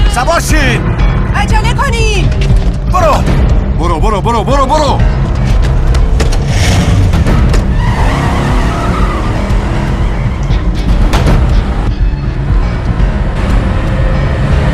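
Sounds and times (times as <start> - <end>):
speech: 0.2 - 0.9, 1.5 - 5.2
car engine roaring while speeding: 5.4 - 14.6
car tires screeching and skidding: 6.3 - 14.6.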